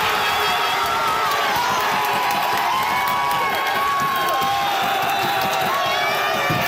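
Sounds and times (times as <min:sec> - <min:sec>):
dense crowd of soccer fans screaming and cheering at goal: 0:00.0 - 0:06.6.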